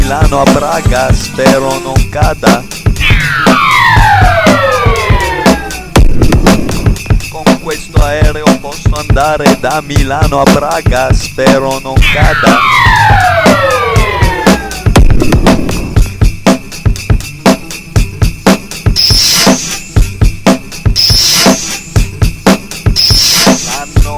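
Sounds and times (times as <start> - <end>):
loud pulsing rhythmic beat of repeated sharp hits: 0.0 - 24.1
speech: 0.1 - 5.0, 7.7 - 13.6
police car siren wailing with falling pitch: 3.0 - 6.0, 12.0 - 15.0.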